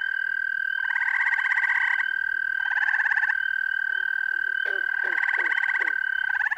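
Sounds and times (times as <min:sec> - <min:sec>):
pulsing croaking calls of gray tree frogs, green frogs and spring peepers: 0:00.0 - 0:06.5
American toad trilling: 0:00.8 - 0:06.5
short gulping frog notes: 0:04.6 - 0:06.0.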